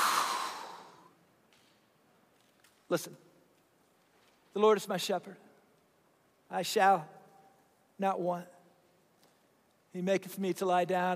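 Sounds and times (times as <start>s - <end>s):
people exhaling together during a prayer: 0.0s - 1.1s
speech: 2.9s - 3.3s, 4.5s - 5.5s, 6.5s - 7.2s, 8.0s - 8.6s, 10.0s - 11.1s.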